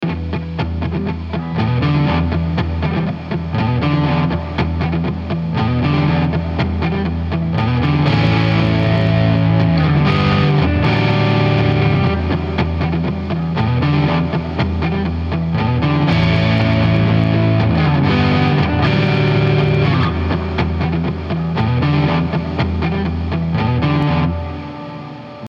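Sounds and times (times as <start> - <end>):
rock guitar riff in E minor: 0.0 - 25.4.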